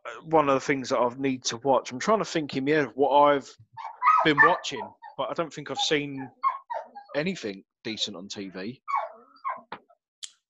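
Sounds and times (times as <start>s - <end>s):
speech: 0.2s - 6.4s, 7.1s - 9.0s
dog barking excitedly at window: 3.8s - 7.2s, 8.8s - 9.7s.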